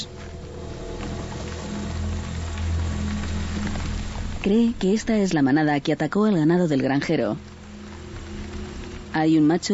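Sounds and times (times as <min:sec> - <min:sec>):
intermittent rain: 0:00.0 - 0:09.7
low rumbling undertone: 0:00.0 - 0:09.7
speech: 0:04.4 - 0:07.5, 0:09.2 - 0:09.7.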